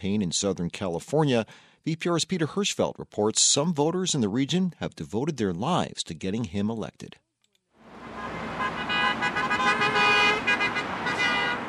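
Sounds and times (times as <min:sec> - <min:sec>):
speech: 0:00.0 - 0:07.2
steady roar of freeway traffic: 0:07.8 - 0:11.6
car horns honking: 0:08.0 - 0:11.6.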